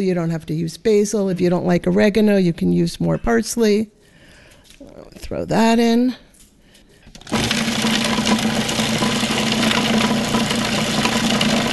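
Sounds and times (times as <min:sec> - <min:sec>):
speech: 0:00.0 - 0:04.0, 0:04.8 - 0:06.2
kitchen machine whirring while finely chopping herbs including basil: 0:07.1 - 0:11.7.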